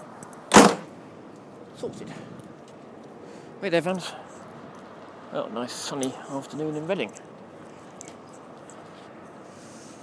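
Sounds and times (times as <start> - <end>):
door pushed shut with a rattling thump: 0.5 - 0.9
speech: 1.8 - 2.4, 3.6 - 4.2, 5.3 - 7.2.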